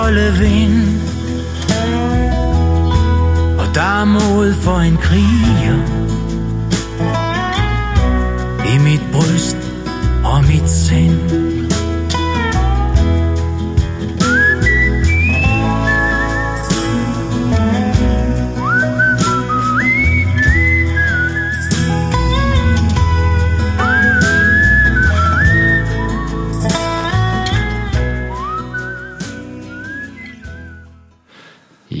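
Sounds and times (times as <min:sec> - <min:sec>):
continuous low instrumental backing: 0:00.0 - 0:31.2
speech: 0:00.1 - 0:01.2, 0:03.7 - 0:06.0, 0:08.7 - 0:09.7, 0:10.3 - 0:11.6
person whistling a slow gentle song melody: 0:14.2 - 0:27.3, 0:28.2 - 0:31.1.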